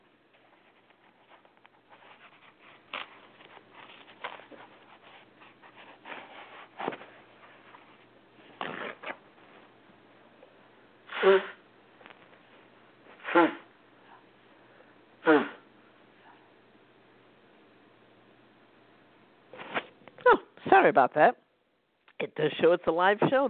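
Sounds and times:
rustling and shuffling: 0:00.0 - 0:10.5, 0:11.9 - 0:13.2
nose blowing: 0:11.1 - 0:11.6, 0:13.2 - 0:13.7, 0:15.2 - 0:15.7
speech: 0:11.2 - 0:11.5, 0:20.8 - 0:21.4, 0:22.2 - 0:23.4.

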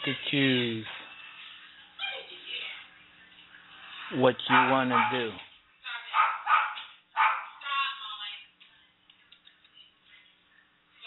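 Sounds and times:
speech: 0:00.0 - 0:01.0, 0:04.1 - 0:05.4
dog barking: 0:04.4 - 0:05.4, 0:06.1 - 0:07.6.

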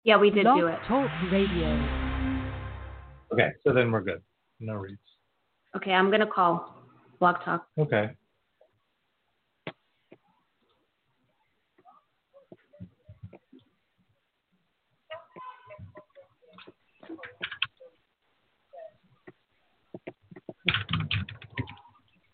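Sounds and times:
speech: 0:00.0 - 0:02.0, 0:03.3 - 0:05.1, 0:05.7 - 0:08.2
typing on a computer keyboard: 0:20.4 - 0:21.9.

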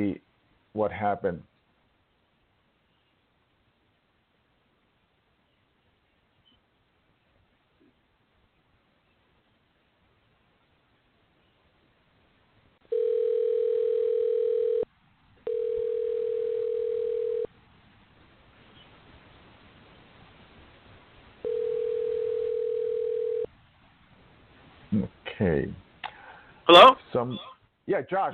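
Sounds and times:
speech: 0:00.0 - 0:01.5, 0:26.8 - 0:28.3
faint phone line hiss: 0:00.0 - 0:28.3
telephone tone through a phone line while calling back: 0:12.9 - 0:17.5, 0:21.4 - 0:23.5.

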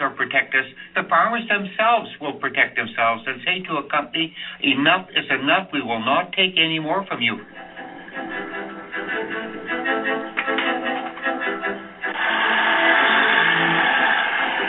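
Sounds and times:
speech: 0:00.2 - 0:07.6
tractor engine droning: 0:07.3 - 0:14.6.

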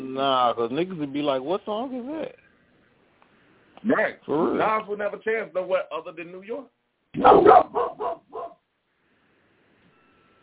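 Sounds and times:
speech: 0:00.2 - 0:02.4, 0:03.8 - 0:08.1
dogs barking: 0:07.2 - 0:08.6.

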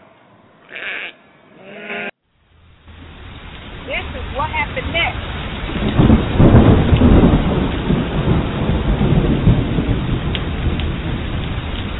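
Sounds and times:
speech: 0:00.7 - 0:01.2, 0:04.4 - 0:05.3
heavy rain: 0:02.2 - 0:11.9
deep thunder rumbling: 0:02.4 - 0:11.9.

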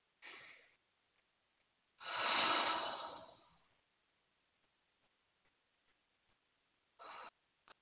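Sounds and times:
deep breaths taken during a guided prayer affirmation: 0:00.2 - 0:00.8, 0:02.0 - 0:03.8, 0:07.0 - 0:07.4.

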